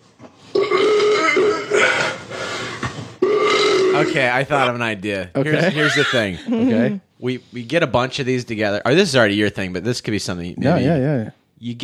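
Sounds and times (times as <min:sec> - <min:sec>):
long loud fart with a buzzy tonal rasp: 0:00.6 - 0:04.2
speech: 0:04.0 - 0:11.8
laughter: 0:05.5 - 0:07.0.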